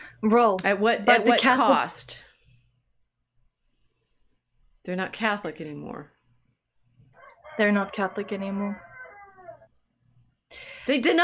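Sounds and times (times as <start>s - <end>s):
speech: 0.2s - 2.2s, 4.8s - 6.2s, 7.6s - 8.9s, 10.5s - 11.2s
rooster crowing: 7.2s - 9.7s.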